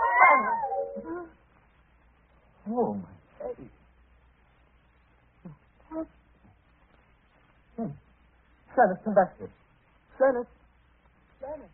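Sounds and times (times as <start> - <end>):
cat yowling: 0.0 - 1.1
speech: 0.3 - 1.4, 2.6 - 3.8, 7.8 - 8.0, 8.8 - 9.6, 10.2 - 10.6.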